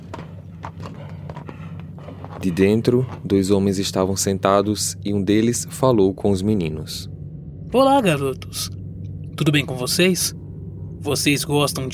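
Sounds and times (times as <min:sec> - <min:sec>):
horse hooves of a horse-drawn carriage clip-clopping: 0:00.0 - 0:03.2
low rumbling hum: 0:00.0 - 0:11.9
speech: 0:02.4 - 0:07.1, 0:07.7 - 0:08.8, 0:09.4 - 0:10.4, 0:11.0 - 0:11.9.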